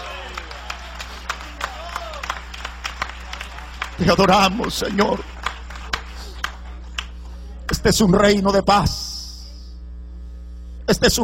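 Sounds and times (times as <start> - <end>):
crowd clapping in applause to Jesus: 0.0 - 8.0
speech: 4.0 - 5.3, 7.8 - 9.1, 10.9 - 11.2.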